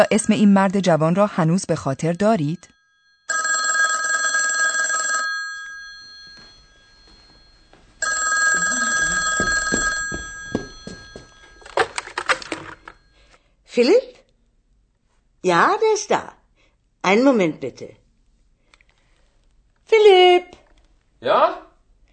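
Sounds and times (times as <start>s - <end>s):
speech: 0.0s - 3.5s, 13.8s - 14.1s, 15.4s - 16.4s, 17.0s - 18.0s, 19.9s - 20.6s, 21.2s - 21.7s
old-fashioned telephone bell ringing in a country house: 0.0s - 13.3s
clattering handling noises: 9.6s - 13.0s.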